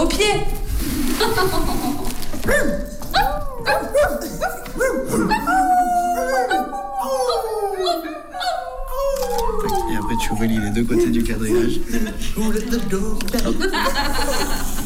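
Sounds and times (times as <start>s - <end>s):
speech: 0.2s - 2.9s, 10.3s - 14.7s
laughter: 1.1s - 2.2s, 3.6s - 8.6s, 9.3s - 14.8s
group of people howling and yelping like a dog pack: 2.6s - 11.8s.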